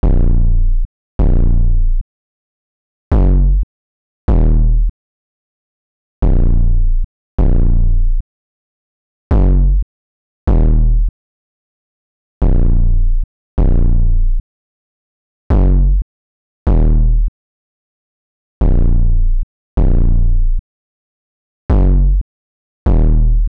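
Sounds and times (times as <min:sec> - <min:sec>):
808 bass melody loop in A# minor: 0:00.0 - 0:02.0, 0:03.1 - 0:03.6, 0:04.3 - 0:04.9, 0:06.2 - 0:08.2, 0:09.3 - 0:09.8, 0:10.5 - 0:11.1, 0:12.4 - 0:14.4, 0:15.5 - 0:16.0, 0:16.7 - 0:17.3, 0:18.6 - 0:20.6, 0:21.7 - 0:22.2, 0:22.9 - 0:23.5.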